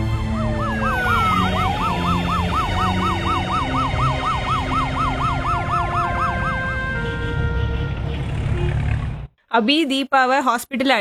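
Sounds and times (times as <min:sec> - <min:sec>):
ambulance siren yelping: 0:00.0 - 0:08.3
traffic rumble: 0:00.0 - 0:09.4
speech: 0:09.6 - 0:10.9.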